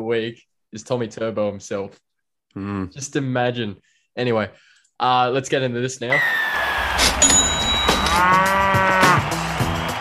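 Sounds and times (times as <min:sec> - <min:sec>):
speech: 0:00.0 - 0:07.4, 0:08.2 - 0:08.6
cow mooing: 0:08.0 - 0:09.2.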